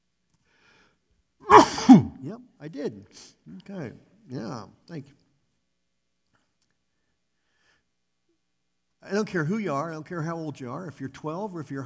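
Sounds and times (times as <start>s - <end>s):
person sneezing: 1.4s - 2.2s
speech: 2.2s - 5.2s, 9.0s - 11.8s.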